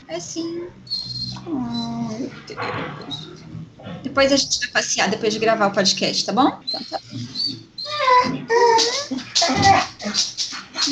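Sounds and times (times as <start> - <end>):
faint noise: 0.0 - 10.9
speech: 0.1 - 10.9
dog whimpering and whining: 0.9 - 2.3, 6.6 - 10.2.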